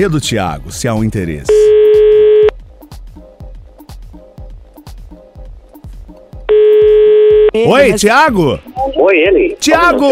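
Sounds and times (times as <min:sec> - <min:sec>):
speech: 0:00.0 - 0:01.8, 0:07.6 - 0:10.1
telephone dial tone: 0:01.7 - 0:02.5, 0:06.5 - 0:07.5.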